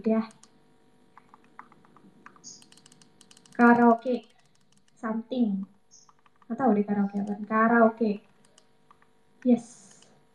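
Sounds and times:
speech: 0.0 - 0.5, 3.6 - 4.3, 5.0 - 5.7, 6.5 - 8.3, 9.4 - 9.9
typing on a computer keyboard: 0.2 - 0.5, 1.2 - 5.0, 6.0 - 7.5, 8.2 - 9.1, 9.8 - 10.1.

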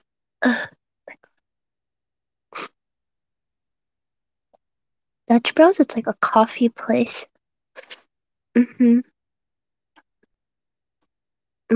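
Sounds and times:
speech: 0.4 - 0.8, 5.3 - 8.0, 8.6 - 9.1
person sneezing: 2.6 - 2.8.

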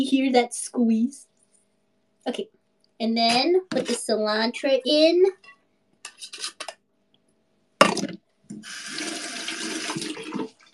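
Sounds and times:
speech: 0.0 - 1.3, 2.2 - 5.5, 6.2 - 6.6
tap water running from a kitchen faucet while washing hands: 8.5 - 10.7.

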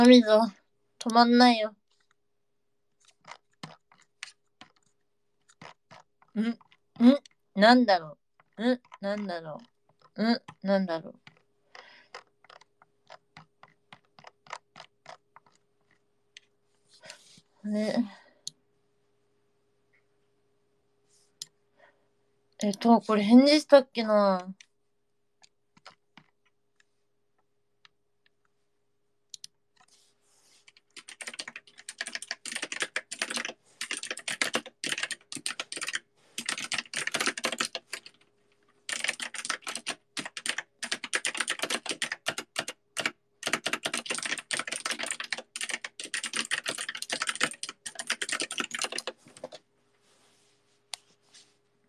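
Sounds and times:
speech: 0.0 - 1.8, 6.4 - 11.3, 17.6 - 18.2, 22.6 - 24.6
rapid typing on a computer keyboard: 3.0 - 7.4, 8.4 - 10.6, 11.2 - 16.5, 25.8 - 26.4, 30.7 - 38.3, 38.9 - 49.6.

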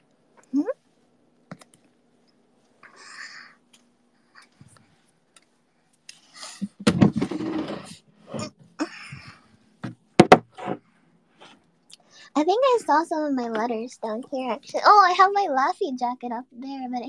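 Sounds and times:
speech: 0.5 - 0.7, 12.8 - 17.0
drawer being closed: 6.7 - 8.0.

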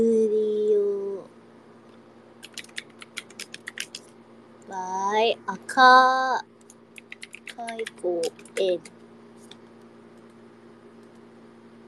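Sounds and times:
low constant hum: 0.0 - 11.8
typing on a computer keyboard: 2.4 - 4.0, 7.0 - 8.9
speech: 5.3 - 6.5, 7.8 - 9.0.

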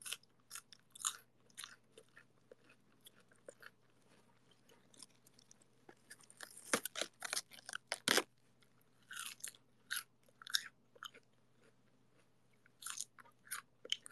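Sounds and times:
person chewing a cold fresh head of lettuce: 0.0 - 8.4, 9.0 - 14.0.

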